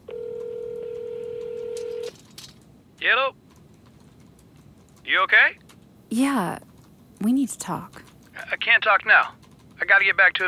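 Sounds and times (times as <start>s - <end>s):
telephone keypad dialing tone: 0.1s - 2.1s
speech: 3.0s - 3.4s, 5.1s - 10.4s.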